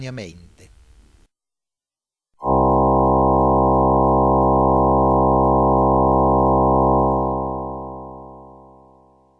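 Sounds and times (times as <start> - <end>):
16 harmonic tones sounding together: 2.4 - 9.3.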